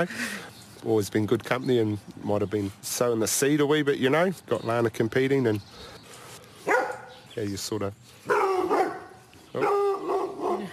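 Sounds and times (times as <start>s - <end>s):
speech: 0.0s - 6.0s, 7.4s - 8.4s
sheepdog barking in a sheep paddock on a family farm: 6.6s - 7.1s, 8.3s - 10.7s.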